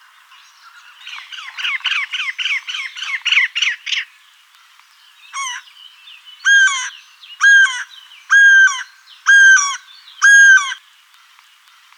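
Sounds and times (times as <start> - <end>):
Eurasian jay calling and crying: 6.5 - 10.8.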